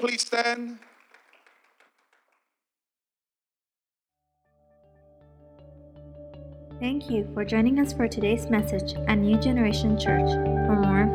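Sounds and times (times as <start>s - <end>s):
speech: 0.0s - 0.9s, 6.8s - 11.1s
crowd applauding warmly: 0.0s - 2.3s.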